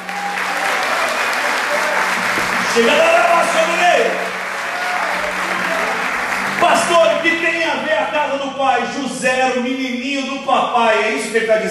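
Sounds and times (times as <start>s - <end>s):
church congregation applauding at a service: 0.0s - 8.4s
speech: 2.8s - 4.3s, 6.6s - 11.6s.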